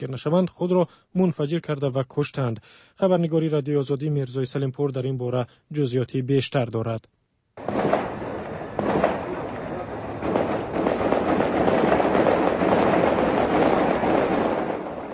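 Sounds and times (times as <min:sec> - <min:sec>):
speech: 0:00.0 - 0:07.7
gunfire at night in the heart of a city: 0:07.6 - 0:15.1.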